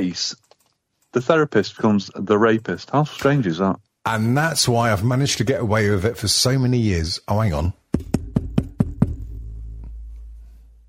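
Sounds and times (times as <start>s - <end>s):
speech: 0.0s - 0.4s, 1.2s - 8.2s
knocking on a door: 7.9s - 9.3s
low rumble: 9.0s - 10.8s.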